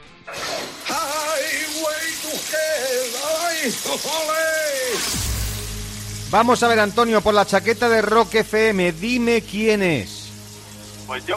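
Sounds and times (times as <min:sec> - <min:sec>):
person singing a wandering wavering melody: 0:00.3 - 0:04.0
steady loud hiss of running shower water: 0:00.3 - 0:11.3
speech: 0:03.6 - 0:05.3, 0:06.3 - 0:10.2, 0:11.1 - 0:11.3.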